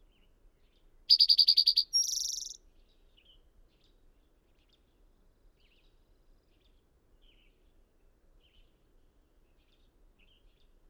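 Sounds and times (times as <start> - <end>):
bird song with clipped notes: 1.1 - 2.6.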